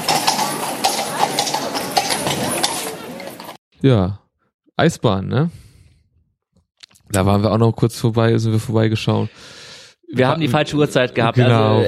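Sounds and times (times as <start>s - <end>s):
horse hooves clip-clopping pulling a carriage across a bridge: 0.0s - 3.6s
dense wash of outdoor noise: 0.0s - 3.9s
speech: 3.8s - 4.2s, 4.8s - 5.6s, 7.1s - 11.8s.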